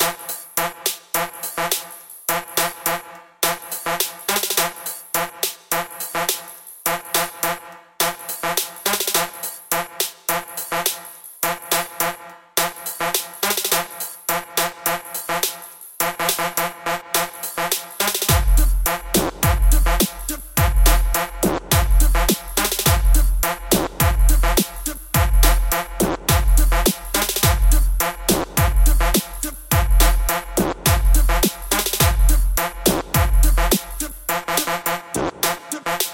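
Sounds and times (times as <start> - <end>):
full drum kit loop: 0.0 - 36.1.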